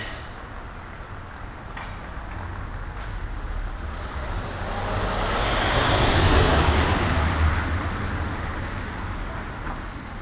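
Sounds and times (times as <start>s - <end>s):
steady low city traffic rumble: 0.0s - 10.2s
vehicle passing: 2.2s - 9.4s.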